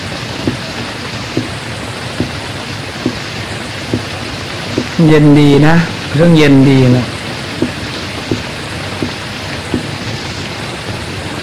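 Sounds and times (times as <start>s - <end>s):
steady rain: 0.0s - 11.4s
soft knocks or drips: 0.4s - 1.6s, 2.2s - 2.4s, 3.0s - 5.0s, 7.5s - 10.1s
speech: 5.0s - 7.2s.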